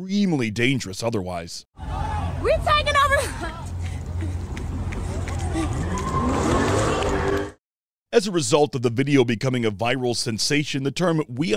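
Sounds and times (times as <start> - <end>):
speech: 0.0 - 4.4, 8.1 - 11.5
wind: 0.6 - 7.6
several voices talking and calling out: 1.8 - 7.3
steady roar of freeway traffic: 1.8 - 7.6
woman's running footsteps on the Lodge freeway in Detroit: 2.8 - 7.5.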